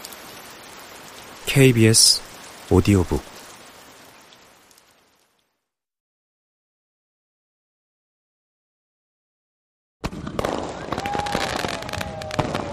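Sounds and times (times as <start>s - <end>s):
speech: 1.5s - 3.3s
fireworks and firecrackers exploding in street: 10.1s - 12.7s.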